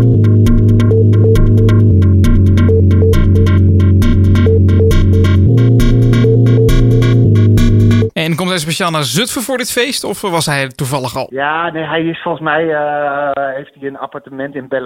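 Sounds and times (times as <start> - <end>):
techno track with pulsing beat, hi-hats and bass line: 0.0 - 9.6
speech: 8.3 - 14.8.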